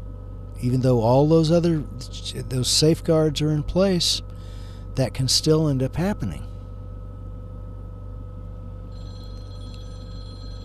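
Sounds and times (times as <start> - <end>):
steady low electrical hum: 0.0 - 10.6
speech: 0.6 - 4.3, 5.0 - 6.5
telephone ringing: 8.9 - 10.6.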